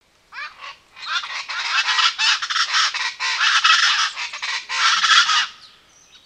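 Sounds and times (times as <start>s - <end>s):
bird calling in a jungle forest with harsh honking nasal notes: 0.3s - 5.8s.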